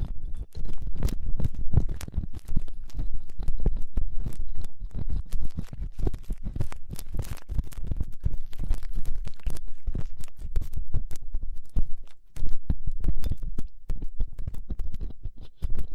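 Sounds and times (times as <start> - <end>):
crackles and taps: 0.0 - 15.9
gloved fingers and cotton swab scratching and rubbing on microphone: 0.0 - 15.9.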